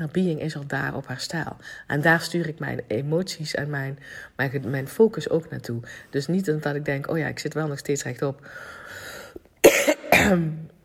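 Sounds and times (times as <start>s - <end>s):
speech: 0.0s - 9.2s, 10.2s - 10.7s
quiet breathy lead-in: 1.6s - 1.9s, 4.0s - 4.4s, 5.8s - 6.2s, 8.4s - 9.5s
harsh coughs: 9.6s - 10.6s.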